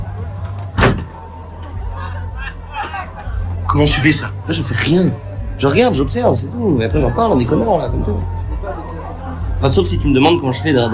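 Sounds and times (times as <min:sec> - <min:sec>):
low traffic rumble: 0:00.0 - 0:10.9
door swinging hard into a man's face: 0:00.7 - 0:01.2
speech: 0:03.8 - 0:08.4, 0:09.6 - 0:10.9.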